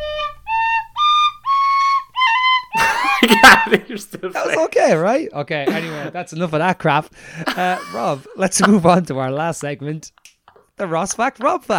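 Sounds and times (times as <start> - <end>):
tin whistle playing shrill breathy notes: 0.0 - 2.8
laughter: 2.8 - 4.9, 5.7 - 6.2, 7.4 - 9.0
speech: 3.5 - 10.2, 10.8 - 11.7.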